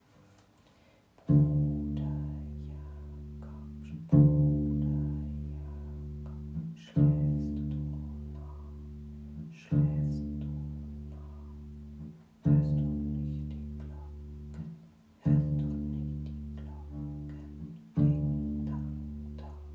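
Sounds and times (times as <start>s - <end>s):
bass line: 1.3s - 19.7s.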